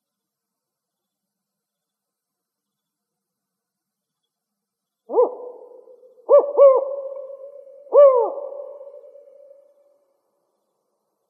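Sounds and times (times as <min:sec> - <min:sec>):
spotted owl four-note hooting call in Arizona: 0:05.1 - 0:09.8.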